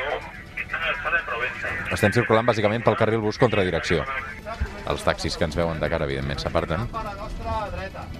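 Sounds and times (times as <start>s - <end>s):
police two-way radio chatter: 0.0s - 4.6s
speech: 1.6s - 8.1s.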